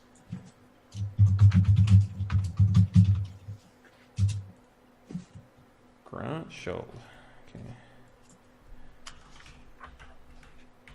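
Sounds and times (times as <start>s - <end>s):
computer keyboard typing: 1.0s - 3.3s, 9.1s - 10.9s
speech: 6.5s - 7.8s.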